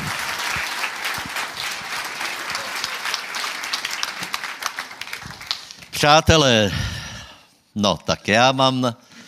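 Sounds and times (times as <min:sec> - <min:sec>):
audience applauding to welcome the next speaker: 0:00.0 - 0:06.0
speech: 0:06.0 - 0:06.9, 0:07.8 - 0:09.0.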